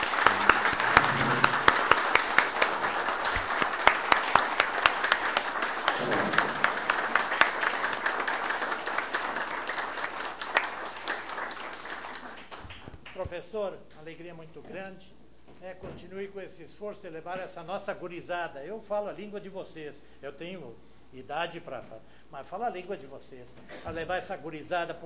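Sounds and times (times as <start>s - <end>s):
crowd applauding at a municipal school event: 0.0s - 13.2s
speech: 13.4s - 25.0s.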